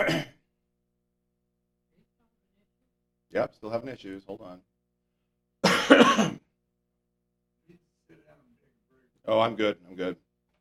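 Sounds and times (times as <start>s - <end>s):
person coughing and clearing throat: 0.0s - 0.4s, 5.6s - 6.5s
speech: 3.4s - 4.7s, 9.2s - 10.2s.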